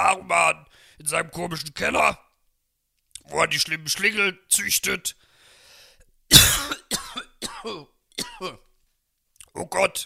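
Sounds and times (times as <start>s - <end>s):
speech: 1.0s - 2.2s, 3.2s - 5.3s, 7.6s - 8.7s, 9.6s - 10.0s
person in a harsh raspy coughing fit: 6.3s - 8.7s.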